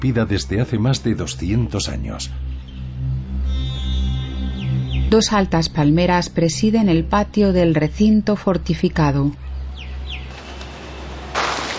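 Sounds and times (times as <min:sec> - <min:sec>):
speech: 0:00.0 - 0:02.7, 0:05.1 - 0:09.4
steady low hum: 0:00.0 - 0:11.3
short bird chirps: 0:02.4 - 0:05.4, 0:09.4 - 0:11.1.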